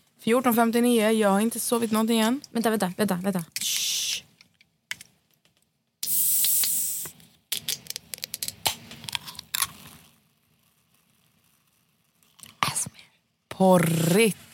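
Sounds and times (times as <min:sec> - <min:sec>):
speech: 0:00.2 - 0:03.8, 0:13.6 - 0:14.4
can being opened with a sharp hiss: 0:03.6 - 0:04.4, 0:06.0 - 0:07.2.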